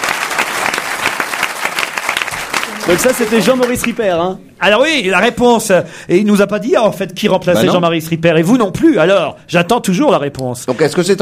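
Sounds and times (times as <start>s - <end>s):
audience applauding a guest: 0.0s - 4.1s
speech: 2.9s - 11.2s.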